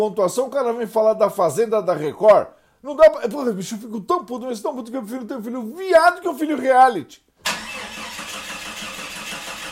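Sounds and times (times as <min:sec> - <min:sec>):
speech: 0:00.0 - 0:07.6
car engine cranking from a starter motor but failing to start: 0:07.4 - 0:09.7.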